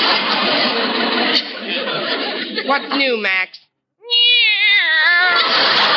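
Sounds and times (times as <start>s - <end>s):
laughter: 0.0s - 3.2s, 4.8s - 5.9s
speech: 2.7s - 3.6s
two-year-old cat meowing: 4.0s - 5.5s.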